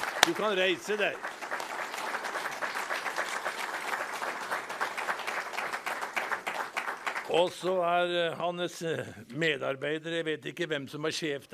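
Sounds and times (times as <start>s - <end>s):
audience applause welcoming a guest: 0.0s - 7.7s
speech: 0.3s - 1.4s, 7.3s - 11.5s.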